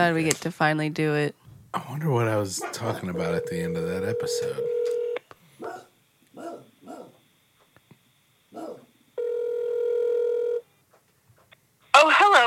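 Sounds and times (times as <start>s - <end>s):
speech: 0.0s - 4.9s
dog barking: 2.6s - 3.0s, 5.6s - 7.2s, 8.5s - 8.9s
phone ringing over a speakerphone: 2.8s - 5.2s, 9.2s - 10.6s.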